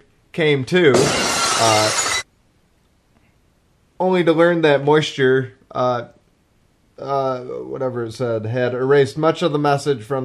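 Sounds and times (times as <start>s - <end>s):
speech: 0.4s - 2.1s, 4.0s - 6.2s, 7.0s - 10.2s
glass bottle shattering: 0.9s - 2.2s.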